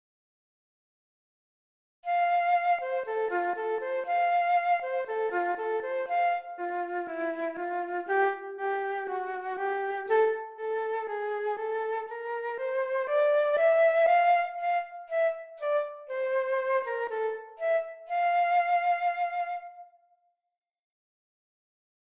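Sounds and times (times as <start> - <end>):
concerto flute: 2.0 - 20.3
concerto harp: 2.1 - 19.9.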